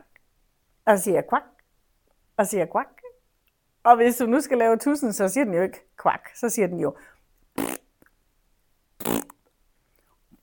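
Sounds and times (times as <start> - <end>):
speech: 0.9 - 1.6, 2.4 - 3.0, 3.8 - 7.2
person blowing raspberry-style fart noises imitating a frog: 7.6 - 7.9, 9.0 - 9.4.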